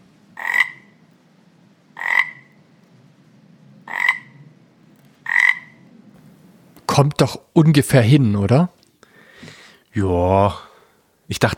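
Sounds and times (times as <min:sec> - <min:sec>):
faint low hum: 0:00.0 - 0:11.5
AI-generated frog croaking: 0:00.3 - 0:01.1, 0:01.9 - 0:02.6, 0:03.8 - 0:04.5, 0:05.2 - 0:05.9
speech: 0:07.0 - 0:08.8, 0:10.0 - 0:10.7, 0:11.3 - 0:11.5.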